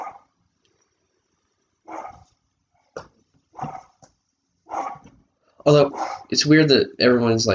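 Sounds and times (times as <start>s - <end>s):
dogs barking: 0.0s - 0.4s, 1.8s - 4.0s, 4.6s - 5.1s, 5.8s - 6.3s
speech: 5.6s - 7.5s.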